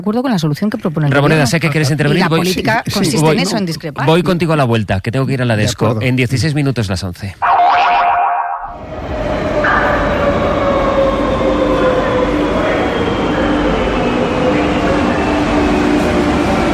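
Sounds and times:
speech: 0.0 - 7.5
metro train in motion with droning motor and whine: 8.6 - 16.7.

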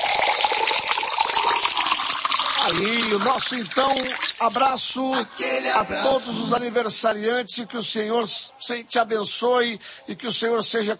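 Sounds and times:
spring water from a spout pouring into a glass: 0.0 - 4.8
speech: 2.6 - 10.9.

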